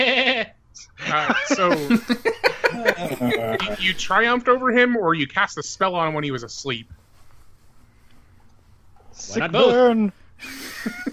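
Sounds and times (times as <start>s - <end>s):
goat bleating: 0.0s - 0.6s
laughter: 0.8s - 4.4s, 9.2s - 11.1s
speech: 1.1s - 2.4s, 3.0s - 7.0s, 9.2s - 11.1s.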